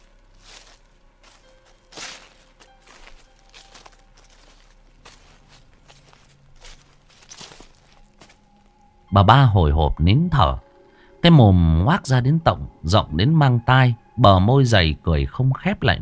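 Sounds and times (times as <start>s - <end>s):
light footsteps behind a house: 0.0s - 8.8s
faint noise: 0.0s - 15.9s
speech: 9.1s - 10.6s, 11.2s - 15.9s.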